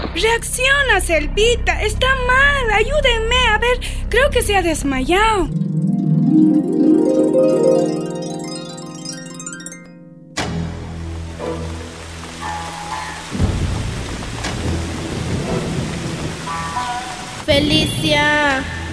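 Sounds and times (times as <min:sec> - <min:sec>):
speech: 0:00.1 - 0:05.6, 0:06.3 - 0:08.0, 0:17.6 - 0:18.8
short melodic tune: 0:05.5 - 0:10.4
heavy rain pouring down: 0:11.0 - 0:18.9.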